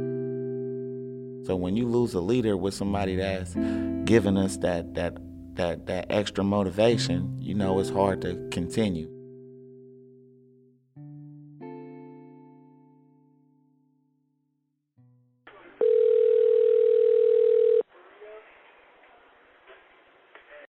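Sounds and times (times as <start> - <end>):
speech: 1.4 - 9.2
emergency phone call ringing tone: 15.8 - 17.9.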